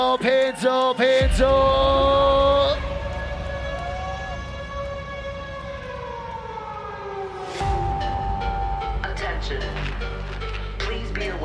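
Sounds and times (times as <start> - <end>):
speech: 0.0 - 2.1
civil defense siren wailing: 1.2 - 10.2
deep rumbling background: 1.2 - 11.4.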